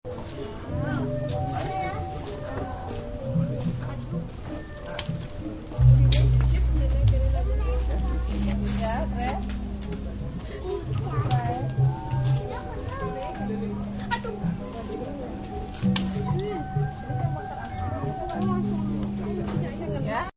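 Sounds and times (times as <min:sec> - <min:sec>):
market ambience in Bali: 0:00.1 - 0:20.3.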